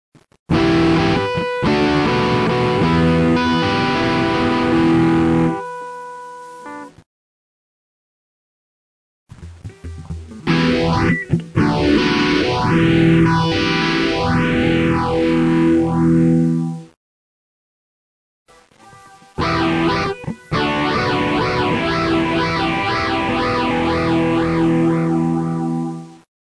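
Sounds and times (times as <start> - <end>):
phaser overdrive effect: 0.5 - 5.6, 9.3 - 17.0, 19.4 - 26.2.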